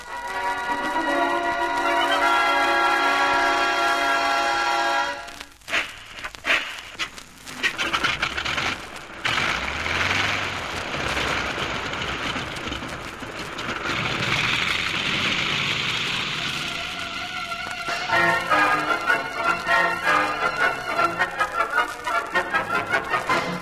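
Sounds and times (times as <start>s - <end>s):
rhythmic music: 0.0s - 7.2s, 16.5s - 23.5s
heavy downpour during a storm over the island of Inagua in the West Indies: 0.0s - 23.5s.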